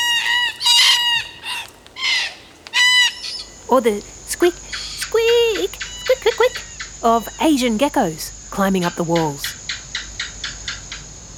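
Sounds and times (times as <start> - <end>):
Red-tailed black cockatoos screeching from the trees: 0.0 - 8.0
speech: 3.7 - 4.7, 6.4 - 9.5.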